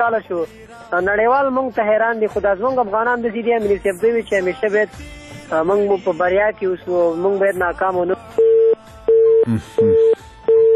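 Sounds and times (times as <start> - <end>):
speech: 0.0 - 8.5, 9.5 - 10.2
disconnect tone from a dropped phone call: 8.4 - 10.7.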